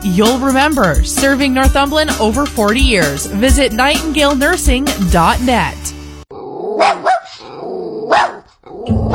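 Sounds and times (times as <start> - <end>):
speech: 0.0 - 6.0
puppy growling: 6.3 - 9.1
puppy barking: 6.7 - 9.1.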